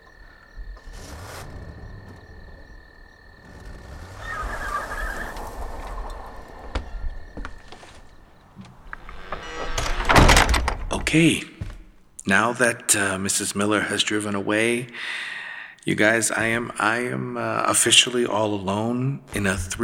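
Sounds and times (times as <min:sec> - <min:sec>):
heavy door with stained glass swinging on its hinges: 0:00.6 - 0:12.1
speech: 0:11.1 - 0:11.5, 0:12.2 - 0:15.3, 0:15.9 - 0:19.8.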